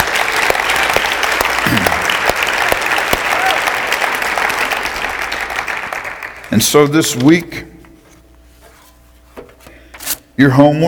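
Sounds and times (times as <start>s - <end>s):
room full of people applauding: 0.0s - 6.8s
speech: 6.6s - 7.7s, 10.4s - 10.8s.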